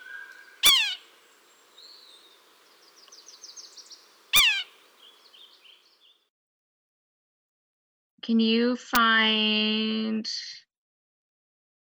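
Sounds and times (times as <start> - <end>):
red-breasted sapsucker giving strong nasal descending squeals: 0.0 - 1.1, 3.4 - 4.7
soft bird twittering and chatter: 0.0 - 6.1
speech: 8.3 - 10.6.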